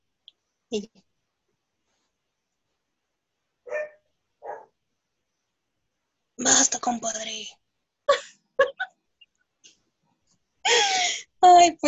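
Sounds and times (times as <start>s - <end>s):
speech: 0.7s - 1.1s, 6.5s - 8.2s, 11.4s - 11.8s
dog barking: 3.7s - 4.8s
laughter: 8.1s - 8.9s.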